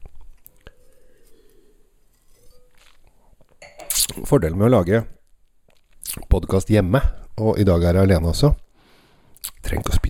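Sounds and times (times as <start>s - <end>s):
person sipping wine: 0.1s - 4.3s
speech: 4.2s - 5.2s, 6.4s - 8.6s.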